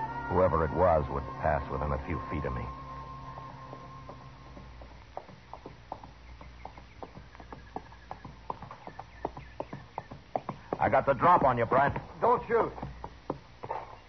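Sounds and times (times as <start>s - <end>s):
low rumbling: 0.0s - 9.2s
horse hooves clip-clopping on hard ground: 0.0s - 14.0s
speech: 0.3s - 2.8s, 10.8s - 12.8s.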